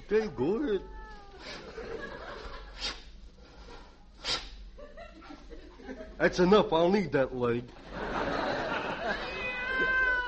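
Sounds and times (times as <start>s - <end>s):
speech: 0.1s - 2.1s, 6.2s - 8.4s
cat meowing: 0.7s - 1.6s, 9.3s - 10.2s
laughter: 1.4s - 3.0s, 4.8s - 6.2s, 7.7s - 10.2s.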